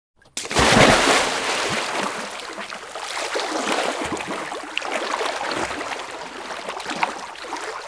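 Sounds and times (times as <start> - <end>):
dive into liquid: 0.3 - 7.7.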